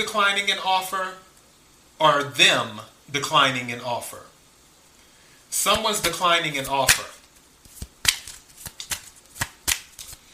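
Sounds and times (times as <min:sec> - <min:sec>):
speech: 0:00.0 - 0:01.3, 0:02.0 - 0:04.3, 0:05.5 - 0:07.2
tarot cards being shuffled and drawn: 0:05.7 - 0:10.3.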